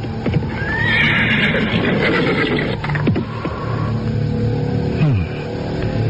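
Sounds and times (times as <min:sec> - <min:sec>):
rough busy outdoor noise: 0:00.0 - 0:06.0
horse whinnying as rider stops it: 0:00.5 - 0:03.2.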